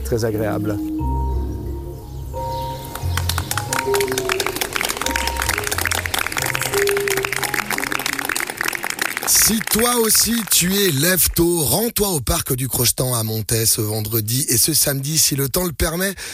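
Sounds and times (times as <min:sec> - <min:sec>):
dense outdoor early morning bird chorus: 0:00.0 - 0:08.7
speech: 0:00.1 - 0:01.2, 0:09.5 - 0:16.3.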